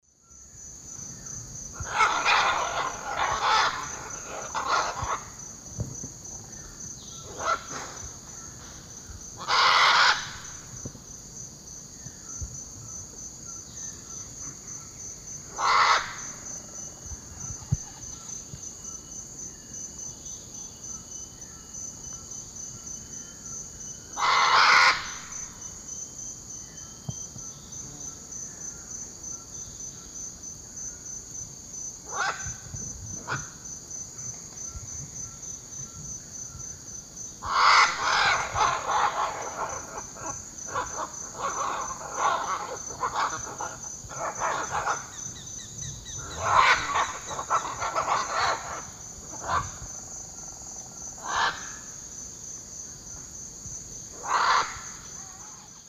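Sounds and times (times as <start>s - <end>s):
Ara macao calls in the Eastern Lowlands of South America: 1.8s - 5.4s, 9.4s - 10.7s, 15.5s - 16.5s, 24.1s - 25.6s, 32.1s - 32.6s, 37.4s - 45.4s, 46.0s - 49.8s, 51.2s - 51.9s, 54.2s - 55.7s.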